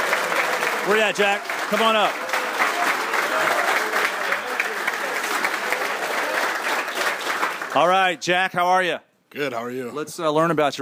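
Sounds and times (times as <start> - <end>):
audience applause: 0.0 - 8.1
speech: 0.8 - 2.2, 7.7 - 10.8.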